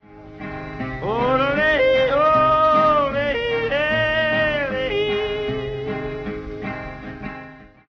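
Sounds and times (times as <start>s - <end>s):
person yodeling: 1.0s - 6.3s.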